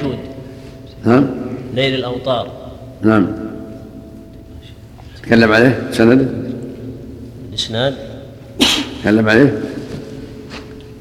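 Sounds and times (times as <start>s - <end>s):
speech: 1.0s - 3.4s, 5.2s - 6.4s, 7.6s - 9.7s
person sneezing: 8.6s - 9.0s.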